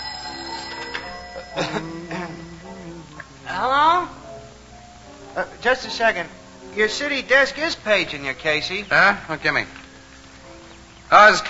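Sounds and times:
telephone ringing: 0:00.0 - 0:03.2
speech: 0:01.6 - 0:02.1, 0:05.4 - 0:09.8, 0:11.2 - 0:11.4.

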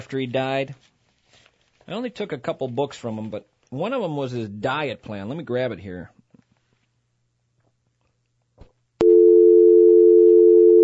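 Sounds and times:
speech: 0:00.0 - 0:00.9, 0:01.9 - 0:06.2
telephone dial tone: 0:09.0 - 0:10.8.

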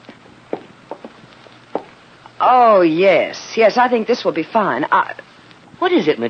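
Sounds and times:
soft footsteps in the hall: 0:00.0 - 0:02.1
speech: 0:02.4 - 0:06.2.

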